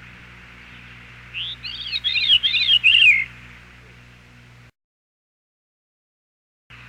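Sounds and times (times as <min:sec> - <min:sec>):
Veery song: 0:00.5 - 0:03.7.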